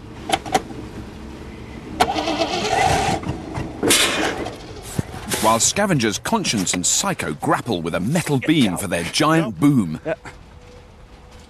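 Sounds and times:
battered old banger's engine cranking and revving: 2.0s - 5.0s
speech: 5.5s - 10.4s.

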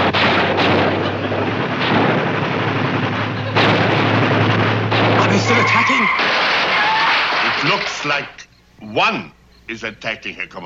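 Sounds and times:
gunfire barrage aimed at attacking tanks: 0.0s - 8.4s
speech: 8.1s - 10.6s.

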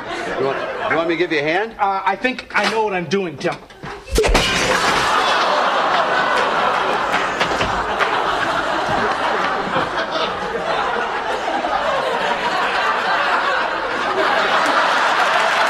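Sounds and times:
audience laughing: 0.0s - 1.3s, 3.8s - 15.6s
speech: 0.4s - 4.4s
glass shattering as a duck crashes through: 4.1s - 5.4s.

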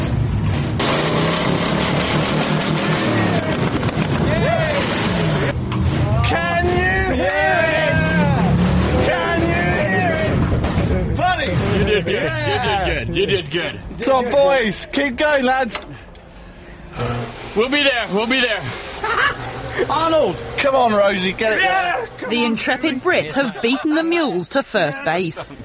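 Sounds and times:
roaring monster truck engine revving: 0.0s - 13.3s, 17.0s - 23.2s
dense crowd noise: 2.2s - 16.0s, 16.6s - 25.6s
people shouting: 2.9s - 10.4s, 21.4s - 22.5s
laughter: 9.2s - 14.8s, 19.0s - 20.2s, 21.6s - 25.6s
speech: 13.5s - 15.9s, 17.6s - 18.8s, 19.8s - 25.6s.

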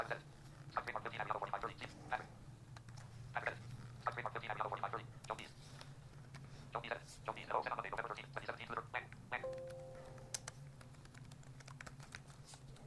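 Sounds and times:
low steady hum: 0.0s - 12.8s
typing on a malfunctioning computer keyboard: 9.4s - 12.8s.

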